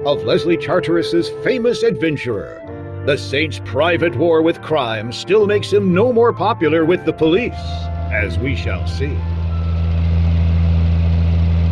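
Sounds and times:
speech: 0:00.0 - 0:09.4
car engine running on a lonely road in upstate New York: 0:07.9 - 0:11.6.

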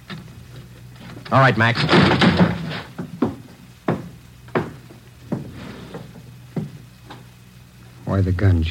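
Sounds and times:
speech: 0:01.3 - 0:02.6, 0:08.2 - 0:08.6
door being kicked in: 0:01.8 - 0:04.8.

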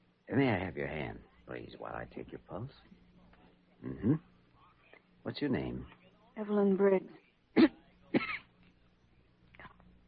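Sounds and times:
quiet hum: 0:00.0 - 0:10.0
speech: 0:00.3 - 0:03.0, 0:03.8 - 0:04.3, 0:05.2 - 0:08.3
sick woman patient coughing: 0:07.6 - 0:08.5.

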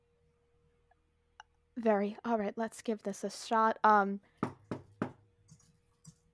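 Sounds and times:
speech: 0:01.8 - 0:04.4
knocking on a door from the inside: 0:04.4 - 0:05.2.

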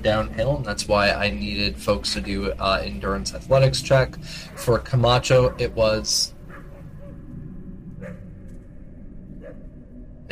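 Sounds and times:
speech: 0:00.0 - 0:06.4
steady low background: 0:00.0 - 0:10.3
dog barking on a downhill road: 0:05.4 - 0:05.7.

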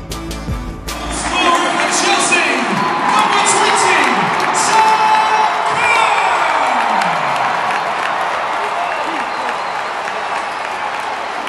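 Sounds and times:
huge stadium crowd at Wembley FA Cup final roaring and cheering: 0:00.8 - 0:11.4
stadium crowd applause at Wembley FA Cup final: 0:01.0 - 0:11.4
scattered shouts from stadium crowd: 0:01.1 - 0:11.4
crowd whistles at Wembley FA Cup final: 0:08.9 - 0:11.4.

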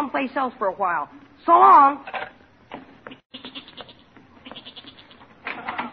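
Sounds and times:
speech: 0:00.1 - 0:02.3
goat bleating in a cellar: 0:03.0 - 0:05.3.

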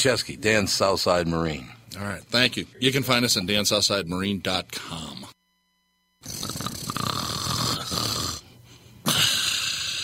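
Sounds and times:
speech: 0:00.0 - 0:05.2
loud rasping snoring: 0:06.2 - 0:10.0.

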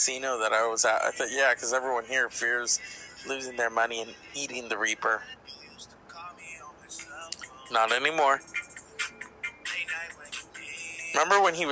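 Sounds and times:
speech: 0:00.0 - 0:05.5, 0:07.7 - 0:08.6, 0:11.2 - 0:11.7
short electronic phone ringtone: 0:01.0 - 0:04.6, 0:06.6 - 0:11.7.

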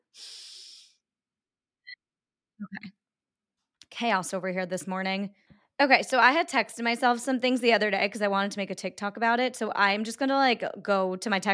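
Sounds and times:
person breathing: 0:00.0 - 0:01.0
speech: 0:04.0 - 0:11.5.

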